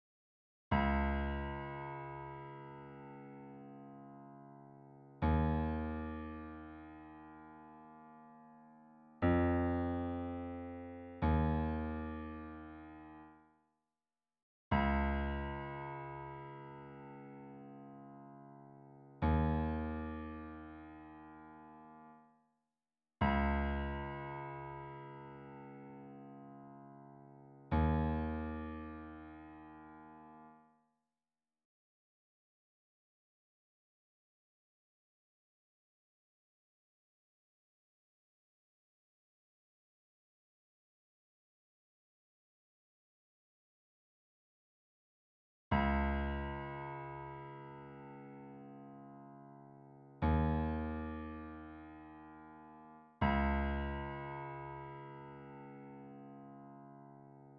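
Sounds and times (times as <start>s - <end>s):
Steinway grand piano: 0.7s - 13.4s, 14.7s - 22.2s, 23.2s - 30.6s, 45.7s - 57.5s.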